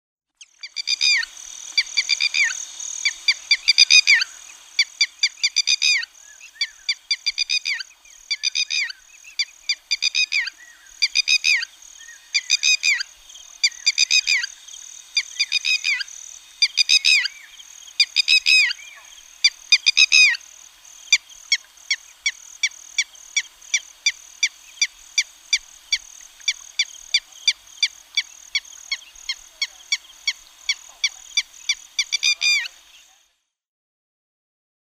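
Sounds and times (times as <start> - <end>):
Red-wattled Lapwing calling: 0.4 - 33.2.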